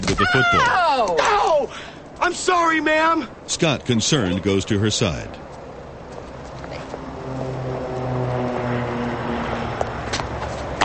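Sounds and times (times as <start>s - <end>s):
speech: 0.1s - 5.6s
airplane engine drone: 5.2s - 10.8s.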